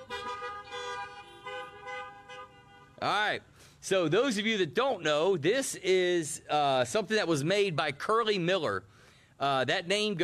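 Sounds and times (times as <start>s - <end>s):
car horns honking: 0.0s - 3.4s
speech: 3.0s - 10.2s.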